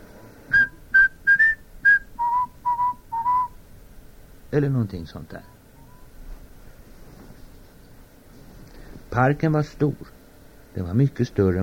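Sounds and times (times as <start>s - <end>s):
person whistling a short cheerful tune: 0.5s - 3.6s
speech: 4.5s - 5.6s, 9.2s - 10.2s, 10.8s - 11.6s.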